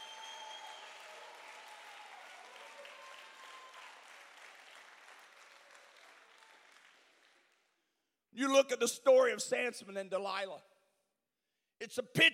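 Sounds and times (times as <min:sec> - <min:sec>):
audience shouts and whoops: 0:00.0 - 0:04.1
crowd clapping: 0:00.0 - 0:07.9
speech: 0:08.4 - 0:10.7, 0:11.8 - 0:12.3.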